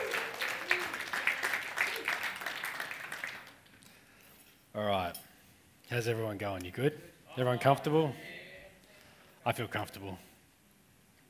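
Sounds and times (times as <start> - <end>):
audience applause: 0.0 - 3.8
speech: 4.8 - 5.3, 5.9 - 8.4, 9.4 - 10.3.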